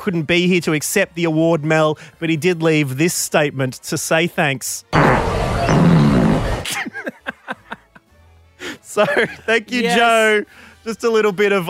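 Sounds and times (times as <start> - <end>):
speech: 0.0 - 6.1, 8.9 - 11.6
long loud rumbling fart with sputtering pops: 4.9 - 6.7
laughter: 6.4 - 8.1, 8.9 - 9.7.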